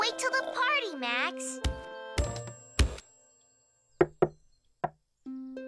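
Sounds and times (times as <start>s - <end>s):
speech: 0.1s - 1.8s
loud sharp knocking on a door: 4.0s - 5.0s.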